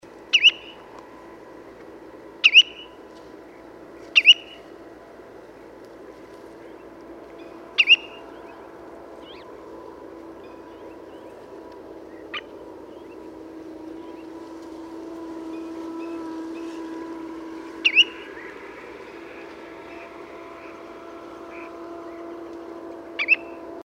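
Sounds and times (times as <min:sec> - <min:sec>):
Spotted Redshank Tringa erythropus calling: 0:00.3 - 0:00.8, 0:02.4 - 0:04.8, 0:06.5 - 0:14.4, 0:17.7 - 0:20.9, 0:23.2 - 0:23.6.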